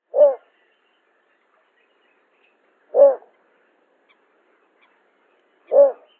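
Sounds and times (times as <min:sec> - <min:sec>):
little bittern Ixobrychus minutus calling: 0:00.1 - 0:06.1.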